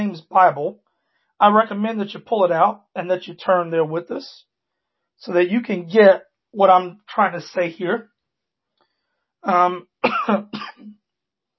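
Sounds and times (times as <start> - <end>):
speech: 0.0 - 0.8, 1.4 - 4.5, 5.2 - 8.1, 9.4 - 11.0
person getting over a dry cough coughing: 10.0 - 10.9.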